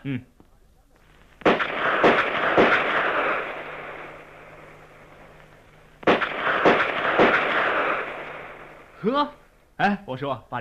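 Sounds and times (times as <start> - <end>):
speech: 0.0 - 0.3, 9.1 - 10.5
gunshots at a police academy shooting practice: 1.1 - 9.3
dense rumbling noise: 1.2 - 9.0.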